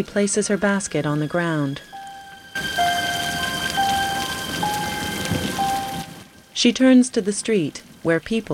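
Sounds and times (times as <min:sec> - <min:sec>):
speech: 0:00.0 - 0:02.0, 0:06.6 - 0:08.5
faint sustained tones: 0:00.0 - 0:06.6
heavy rain downpour on a street: 0:02.3 - 0:06.7.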